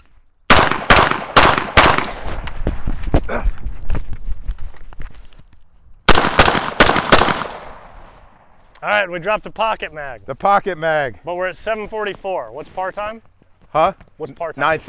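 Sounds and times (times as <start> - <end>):
gunshots during a shooting drill at targets: 0.5 - 2.5, 6.1 - 8.1
footsteps: 2.0 - 6.0, 7.7 - 14.8
speech: 8.8 - 14.8.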